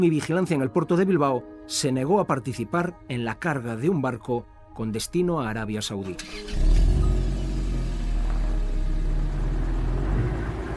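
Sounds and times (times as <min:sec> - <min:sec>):
speech: 0:00.0 - 0:06.7
car engine rumbling, humming and revving as the car drives off: 0:06.2 - 0:10.7.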